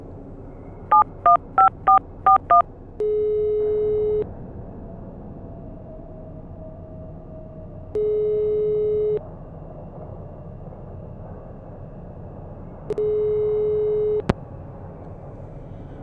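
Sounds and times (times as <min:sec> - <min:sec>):
home landline telephone keypad beeps: 0:00.9 - 0:04.2, 0:08.0 - 0:09.2, 0:12.9 - 0:14.3.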